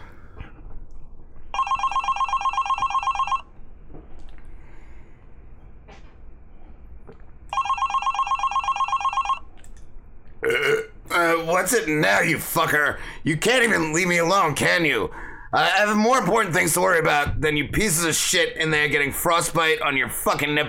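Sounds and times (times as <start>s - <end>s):
telephone on a desk ringing with an electronic trill: 1.5s - 3.5s, 7.5s - 9.5s
speech: 11.6s - 20.6s.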